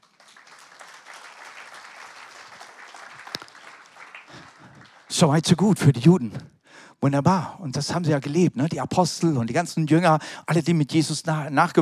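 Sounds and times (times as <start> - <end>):
crowd applauding: 0.0 - 5.6
speech: 5.2 - 11.7.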